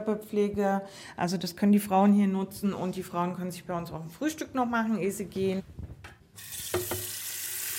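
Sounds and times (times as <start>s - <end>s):
speech: 0.0s - 5.8s
tap water running into a sink while making tea: 6.4s - 7.7s.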